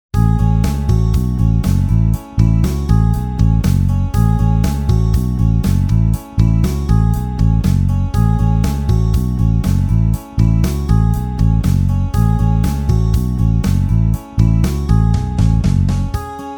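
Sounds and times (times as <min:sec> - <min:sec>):
pop rock bass loop in A major: 0:00.1 - 0:16.4.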